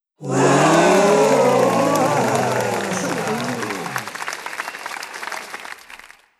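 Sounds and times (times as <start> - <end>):
crowd laughing: 0.2 - 4.2
applause: 0.2 - 6.3.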